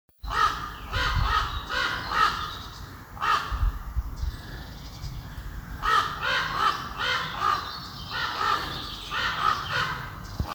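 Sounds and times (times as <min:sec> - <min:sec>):
Grand Corbeau calling: 0:00.2 - 0:03.8, 0:05.3 - 0:10.2.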